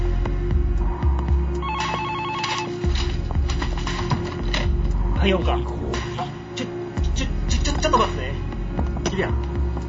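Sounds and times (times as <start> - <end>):
steady low throbbing drone: 0.0 - 9.8
telephone ringing for a long-distance call: 1.6 - 2.9
speech: 5.2 - 5.8.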